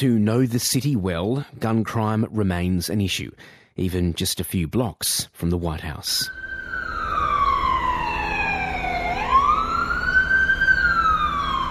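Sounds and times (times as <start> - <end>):
speech: 0.0 - 6.4
emergency vehicle siren wailing past a house: 6.2 - 11.6
low rumble of traffic: 6.3 - 11.6.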